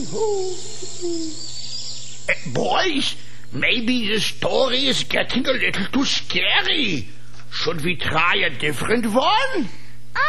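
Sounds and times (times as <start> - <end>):
speech: 0.0 - 1.6, 2.3 - 10.2
owl hooting: 0.0 - 3.4
hum: 0.0 - 10.2.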